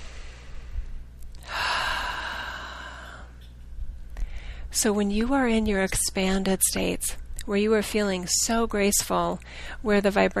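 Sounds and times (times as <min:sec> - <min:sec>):
long deep airy breath: 0:00.0 - 0:03.4, 0:04.2 - 0:04.7
speech: 0:04.7 - 0:10.3.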